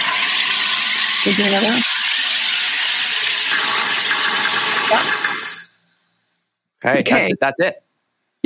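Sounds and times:
home soda maker carbonating water: 0.0 - 6.0
speech: 1.2 - 2.0, 4.9 - 5.2, 6.8 - 7.8.

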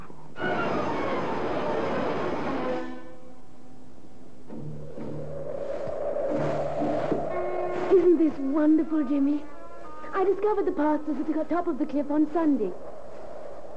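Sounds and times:
humming droning tone: 0.0 - 13.7
train rumbling along the rails: 0.0 - 13.7
speech: 8.6 - 9.6, 10.2 - 12.9.

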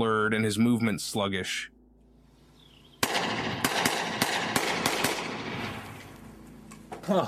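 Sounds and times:
speech: 0.3 - 1.8, 7.1 - 7.2
9mm pistol gunshots fired at a blue couch under a bridge: 3.0 - 6.0.

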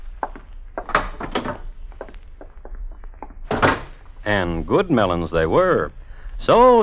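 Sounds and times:
wooden thunks and knocks: 0.0 - 4.2
door being opened: 0.0 - 4.3
rattling: 0.0 - 4.3
speech: 4.2 - 6.8.

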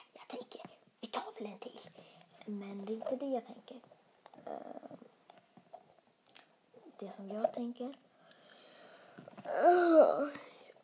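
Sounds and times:
soft breathy sounds: 1.8 - 2.4, 8.1 - 10.8
speech: 2.5 - 4.9, 7.0 - 8.1, 9.5 - 10.4
person yawning close to the mic: 9.5 - 10.6.

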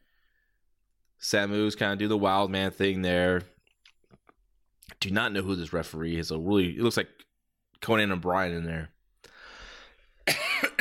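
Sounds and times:
speech: 1.2 - 3.5, 4.9 - 8.9
person coughing: 10.2 - 10.7.

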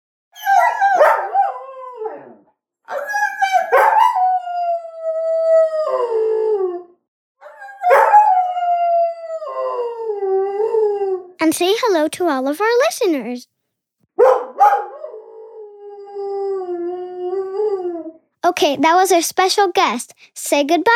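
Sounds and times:
Bernedoodle howling: 0.4 - 11.4, 14.3 - 18.2
speech: 11.5 - 13.5, 18.6 - 20.9.

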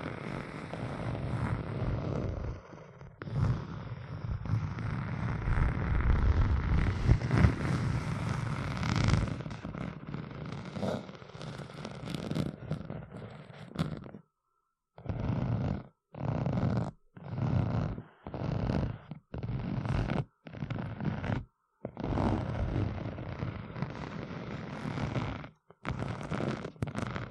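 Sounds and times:
rough scratching: 0.0 - 14.2, 15.0 - 27.3.

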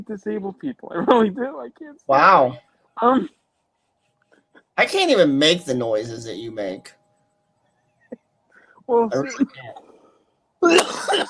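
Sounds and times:
speech: 0.0 - 3.4, 4.8 - 7.0, 8.9 - 9.8, 10.6 - 11.2
person giving a deliberate cough: 10.6 - 11.2.

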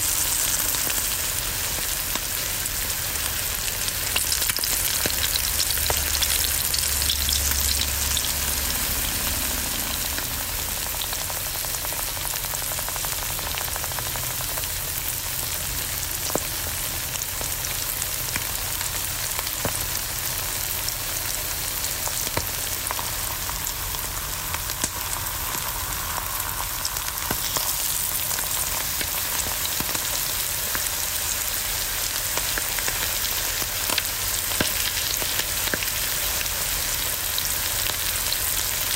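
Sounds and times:
egg frying and sizzling in a pan: 0.0 - 38.9
low rumble: 6.0 - 11.9.

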